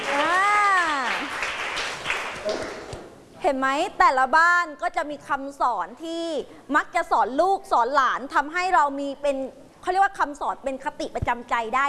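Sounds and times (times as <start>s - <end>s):
group of children clapping hands: 0.0s - 3.0s
speech: 3.5s - 11.8s.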